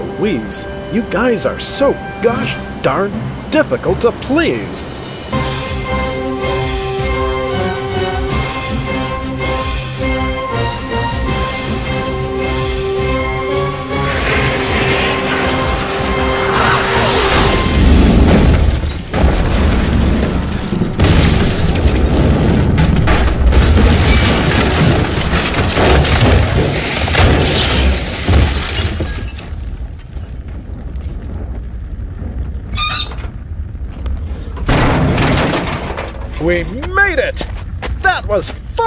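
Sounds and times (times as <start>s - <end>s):
lingering low rumble: 0.0s - 26.7s, 28.6s - 38.8s
speech: 0.2s - 5.0s, 38.3s - 38.6s
jet plane crash-landing with booming and shattering impacts: 14.1s - 29.5s, 34.4s - 36.3s.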